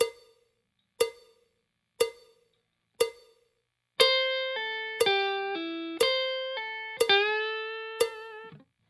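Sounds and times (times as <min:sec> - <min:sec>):
slow blues guitar tricks: 0:04.0 - 0:08.6.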